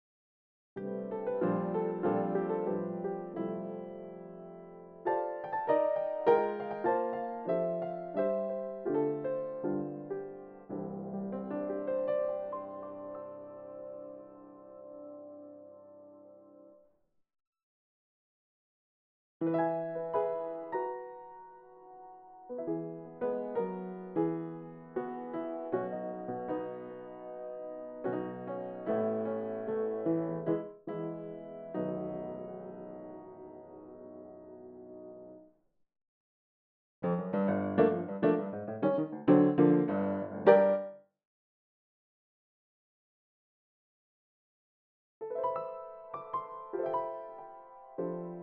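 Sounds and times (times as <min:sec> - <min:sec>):
ragtime piano from a sample library: 0:00.8 - 0:15.7, 0:19.4 - 0:35.4, 0:37.0 - 0:41.0, 0:45.2 - 0:48.4.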